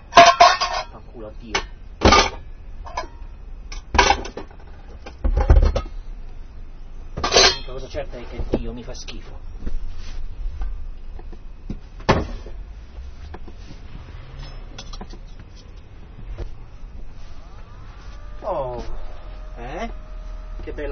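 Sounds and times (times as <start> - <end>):
refrigerator humming: 0.0 - 20.8
speech: 1.2 - 2.4, 7.8 - 9.8
short warbling tonal sweep: 17.2 - 20.8.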